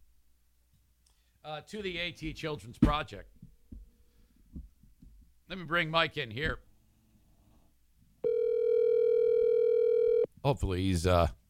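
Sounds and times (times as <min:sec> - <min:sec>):
speech: 0:01.4 - 0:03.4, 0:05.5 - 0:06.7, 0:10.4 - 0:11.4
telephone ringing tone on an outgoing phone call: 0:08.2 - 0:10.3.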